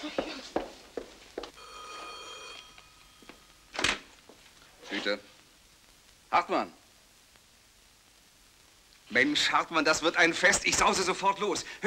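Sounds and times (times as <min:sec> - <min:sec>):
telephone ringing on an outgoing call: 0:01.6 - 0:03.8
speech: 0:05.0 - 0:05.3, 0:06.3 - 0:06.8, 0:09.1 - 0:11.8.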